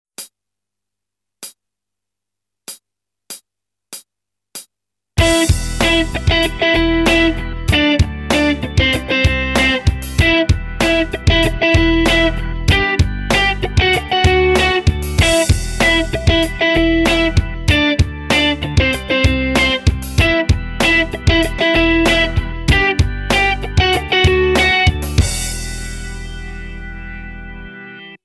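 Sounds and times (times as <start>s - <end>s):
guitar playing octaves: 5.2s - 28.2s.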